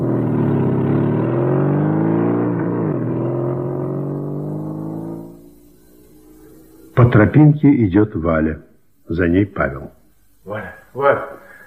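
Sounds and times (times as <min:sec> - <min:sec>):
motorcycle engine running as the bike leaves a yard and rides away: 0:00.0 - 0:07.1
speech: 0:07.0 - 0:11.4.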